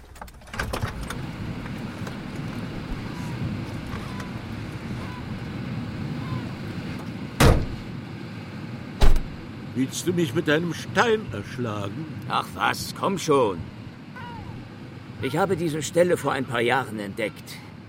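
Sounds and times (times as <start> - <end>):
steady wind outdoors in warm weather: 0.0 - 17.8
surf-like rush: 1.1 - 17.8
sharp car door thuds: 7.4 - 7.8, 9.0 - 9.3
speech: 9.8 - 13.8, 15.2 - 17.6.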